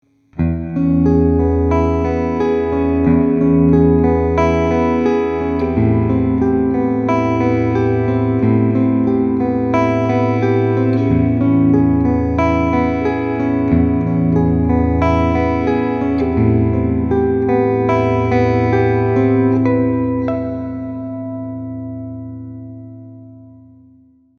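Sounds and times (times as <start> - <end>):
Ibanez TM1803M Talman Prestige clean picking on neck and middle pickups: 0.4 - 24.3.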